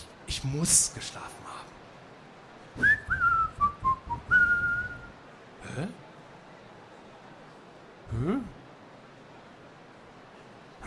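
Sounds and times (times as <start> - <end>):
speech: 0.4 - 1.8, 5.8 - 6.0
person whistling: 2.8 - 5.1.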